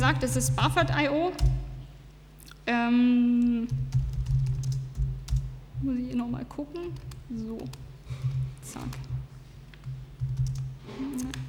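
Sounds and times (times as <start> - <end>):
speech: 0.0 - 1.6, 2.7 - 4.0, 5.8 - 9.1, 10.9 - 11.4
typing on a computer keyboard: 3.4 - 5.5, 6.8 - 9.2, 9.8 - 11.4.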